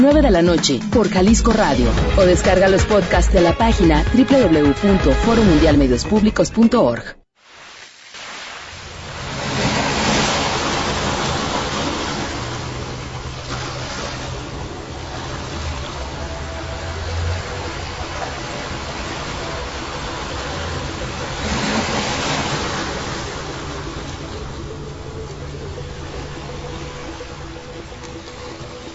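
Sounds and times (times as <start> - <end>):
speech: 0.0 - 7.2
ocean waves washing against coastal rock arches: 7.4 - 28.9.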